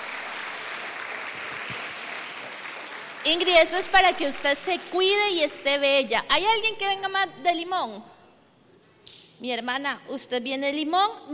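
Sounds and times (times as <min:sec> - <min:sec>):
crowd applauding: 0:00.0 - 0:05.0
speech: 0:03.2 - 0:08.1, 0:09.4 - 0:11.3.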